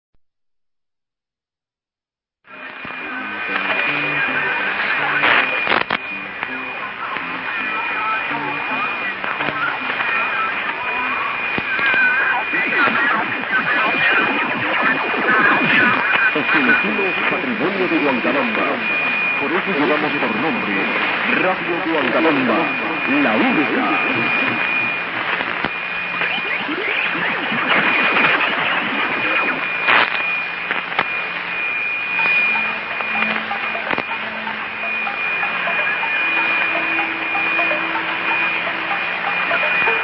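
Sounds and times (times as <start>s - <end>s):
6282 kHz shortwave radio signal from Peru: 2.5s - 40.0s.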